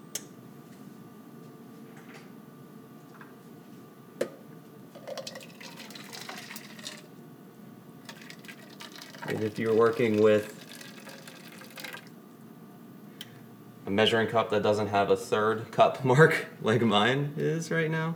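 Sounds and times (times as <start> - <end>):
quiet hum: 0.0 - 18.1
just-boiled water pouring into cornmeal batter: 5.0 - 7.1, 8.0 - 12.2
speech: 9.4 - 10.6, 13.9 - 18.1.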